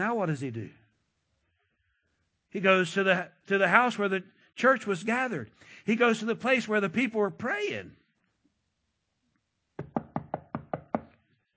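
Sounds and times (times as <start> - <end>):
speech: 0.0 - 0.8, 2.5 - 8.0
knocking on a wooden door: 9.8 - 11.2.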